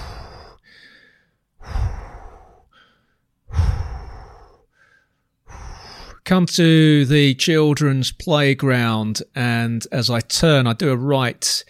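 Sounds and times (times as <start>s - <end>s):
heavy breathing while running past a hill: 0.0s - 6.2s
speech: 6.3s - 11.6s.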